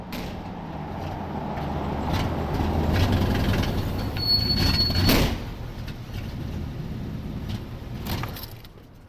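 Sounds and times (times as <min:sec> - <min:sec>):
loud old Buick station wagon engine and road noise while driving: 0:00.0 - 0:09.0
brief high-pitched squeal: 0:03.9 - 0:05.2.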